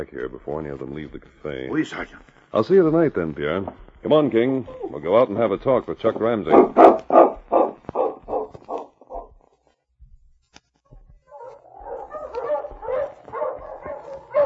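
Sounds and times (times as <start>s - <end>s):
speech: 0.0s - 7.3s
sled dog team barking and yipping: 6.5s - 9.4s, 11.2s - 14.4s.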